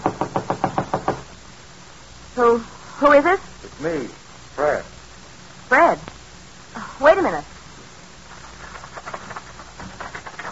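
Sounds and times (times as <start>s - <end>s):
knocking on an apartment door: 0.0s - 1.3s
speech: 2.4s - 4.9s, 5.7s - 6.1s, 7.0s - 7.5s.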